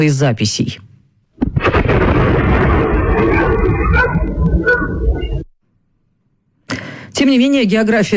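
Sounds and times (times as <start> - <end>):
speech: 0.0 - 0.9, 7.2 - 8.1
rumbling explosion in the sky outdoors: 1.4 - 5.5.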